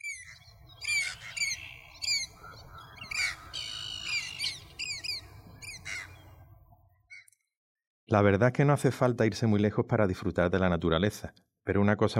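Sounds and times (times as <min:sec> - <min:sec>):
birds squawking in a natural park on the Bay of Cádiz: 0:00.0 - 0:06.4
speech: 0:08.1 - 0:12.1.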